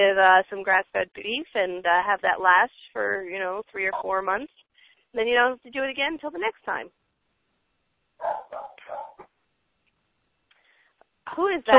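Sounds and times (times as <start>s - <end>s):
speech: 0.0s - 7.0s, 8.2s - 9.1s, 11.3s - 11.7s
dog barking: 8.2s - 9.3s.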